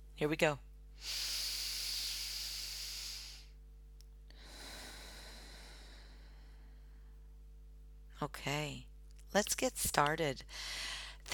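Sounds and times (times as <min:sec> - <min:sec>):
faint steady hum: 0:00.0 - 0:11.3
speech: 0:00.2 - 0:01.3, 0:08.2 - 0:11.3
deep breath in through the nose and out through the mouth: 0:01.0 - 0:03.6, 0:04.3 - 0:07.3, 0:10.5 - 0:11.2.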